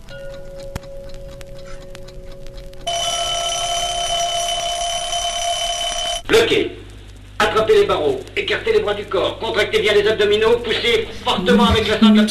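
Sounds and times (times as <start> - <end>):
alarm clock ticking: 0.0 - 6.3
speech: 6.3 - 6.8, 7.5 - 12.2.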